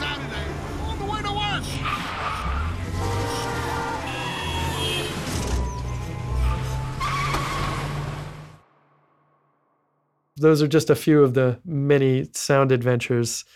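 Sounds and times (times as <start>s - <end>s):
car engine roar: 0.0s - 8.6s
car tires squealing while peeling out on side roads in Marin County: 1.5s - 8.3s
speech: 10.4s - 13.5s.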